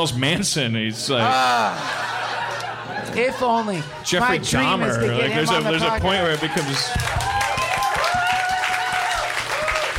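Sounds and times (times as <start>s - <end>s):
speech: 0.0s - 2.3s, 3.0s - 7.2s
laughter: 1.2s - 6.8s
crowd applauding: 5.4s - 9.9s
people whooping: 6.3s - 9.9s.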